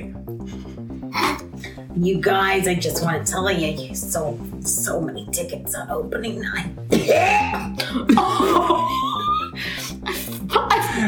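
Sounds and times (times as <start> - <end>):
speech: 1.7 - 9.8
sharp coughs: 6.9 - 7.9
laughter: 7.8 - 11.0.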